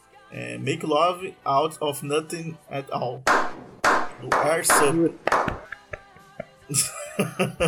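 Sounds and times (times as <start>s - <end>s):
speech: 0.3s - 3.4s, 4.2s - 5.6s, 6.7s - 7.6s
sharp irregular hand claps: 3.3s - 6.6s
laughter: 6.7s - 7.6s.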